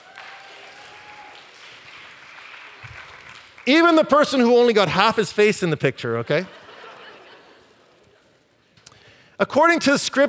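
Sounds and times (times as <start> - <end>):
crowd clapping: 0.0 - 4.5
speech: 3.6 - 6.6, 9.4 - 10.2
laughter: 6.1 - 8.4.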